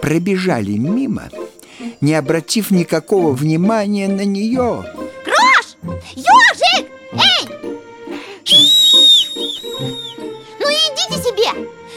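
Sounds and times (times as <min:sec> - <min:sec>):
speech: 0:00.0 - 0:01.4, 0:02.0 - 0:07.6
piercing high shrill whistle: 0:08.5 - 0:10.3.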